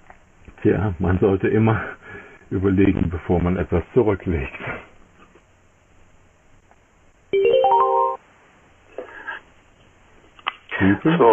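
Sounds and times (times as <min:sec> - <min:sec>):
speech: 0:00.6 - 0:04.8, 0:10.9 - 0:11.3
electronic telephone tones: 0:07.4 - 0:08.2.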